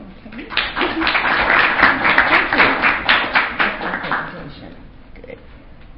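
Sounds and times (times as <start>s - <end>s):
audience applause after a presentation: 0.5s - 4.5s.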